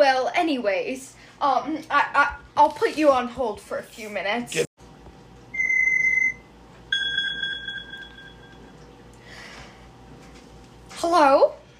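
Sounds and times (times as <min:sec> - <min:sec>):
speech: 0:00.5 - 0:04.7, 0:11.0 - 0:11.6
phone ringtone beeping: 0:05.6 - 0:08.6.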